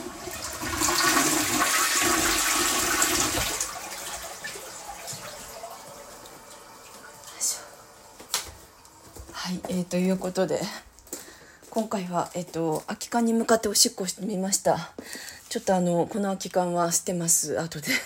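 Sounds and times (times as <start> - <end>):
toilet flushing: 0.0 - 9.2
speech: 9.9 - 10.9, 11.8 - 18.0.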